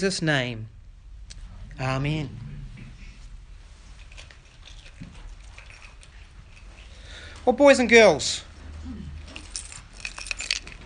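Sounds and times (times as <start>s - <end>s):
speech: 0.0s - 0.8s, 1.8s - 2.5s, 7.4s - 9.1s
low hum: 0.0s - 10.8s
bunch of keys jingling and clinking: 9.3s - 10.8s.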